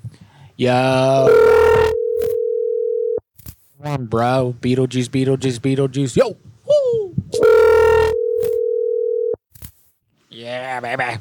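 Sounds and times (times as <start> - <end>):
speech: 0.6 - 1.6, 3.9 - 6.5, 10.6 - 11.1
telephone dial tone while placing call: 1.3 - 3.2, 7.4 - 9.4.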